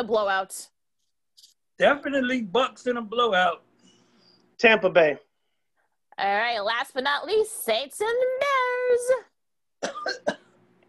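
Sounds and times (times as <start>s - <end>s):
speech: 0.0s - 0.8s, 1.4s - 3.7s, 4.6s - 5.2s, 6.2s - 10.4s
person coughing harshly: 9.8s - 10.6s.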